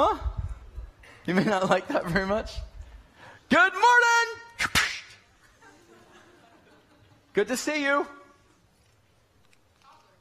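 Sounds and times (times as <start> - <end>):
speech: 1.3 - 2.7, 3.5 - 4.2, 7.4 - 8.2
sharp slap in the face: 4.6 - 5.2
laughter: 5.3 - 7.4.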